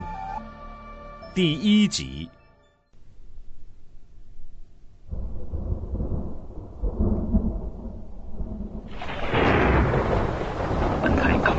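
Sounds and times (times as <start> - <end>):
speech: 1.4 - 2.4
thunder on a stormy night in Lanxi County: 5.1 - 11.5.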